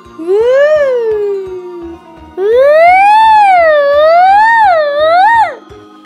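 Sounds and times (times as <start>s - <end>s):
low rhythmic pulsing: 0.0s - 5.7s
ambulance siren wailing: 0.2s - 5.7s.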